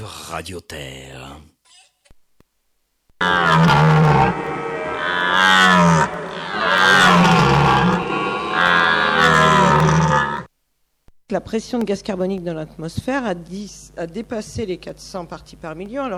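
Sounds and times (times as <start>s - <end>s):
speech: 0.0s - 1.6s, 11.3s - 16.1s
wild boar grunting: 3.2s - 10.5s.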